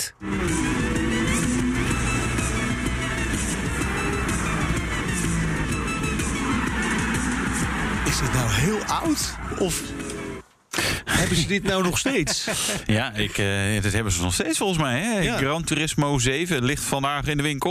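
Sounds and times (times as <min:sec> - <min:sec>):
speech: 0:00.0 - 0:00.6, 0:08.6 - 0:10.0, 0:11.3 - 0:17.6
Ferrari V12 engine revving: 0:00.1 - 0:10.4
laughter: 0:11.1 - 0:13.5.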